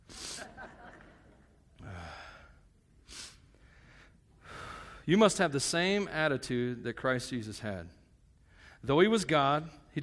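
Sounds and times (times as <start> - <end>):
breathy nasal sniffles: 0.0 - 0.5, 3.0 - 3.5
laughter: 0.3 - 1.6
speech: 5.1 - 8.0, 8.8 - 10.0.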